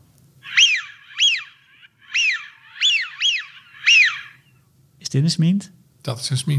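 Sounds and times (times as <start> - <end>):
Eurasian wigeon whistling: 0.4 - 4.6
speech: 5.1 - 6.5.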